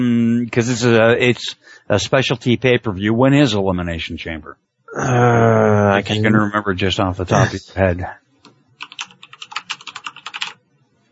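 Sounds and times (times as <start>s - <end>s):
speech: 0.0s - 8.2s
typing rapidly on a computer keyboard: 8.8s - 10.6s.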